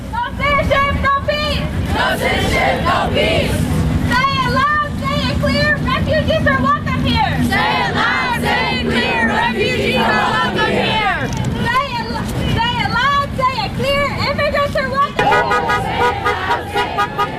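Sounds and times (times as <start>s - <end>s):
low traffic rumble: 0.0s - 17.3s
large crowd of marchers chanting and shouting along a street: 0.6s - 4.7s, 6.6s - 12.5s, 13.2s - 17.3s
passing cars honking horns in support of marchers: 15.2s - 17.3s.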